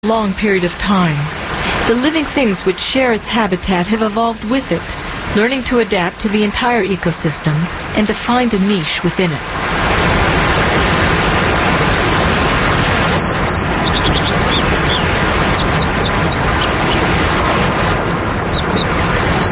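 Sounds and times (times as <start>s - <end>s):
speech: 0.0s - 9.8s
waterfall rushing: 0.8s - 19.5s
American dipper chirping at a waterfall: 13.0s - 19.5s.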